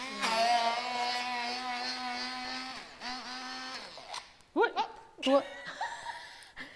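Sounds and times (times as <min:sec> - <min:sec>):
electric blender blending gazpacho: 0:00.0 - 0:04.4.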